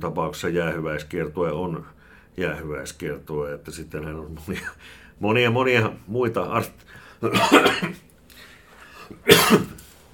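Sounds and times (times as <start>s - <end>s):
speech: 0.0s - 8.0s
person coughing: 7.3s - 8.1s, 9.2s - 9.9s.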